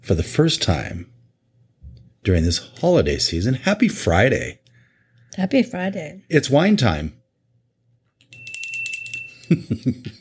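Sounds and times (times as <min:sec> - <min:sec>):
speech: 0:00.0 - 0:01.2, 0:02.2 - 0:04.6, 0:05.3 - 0:07.2, 0:09.5 - 0:10.2
hand bell shaken rapidly: 0:08.3 - 0:09.6.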